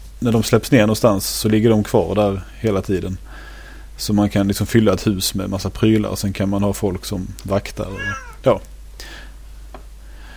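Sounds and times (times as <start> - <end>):
speech: 0.2 - 9.2
cat meowing: 7.9 - 8.4.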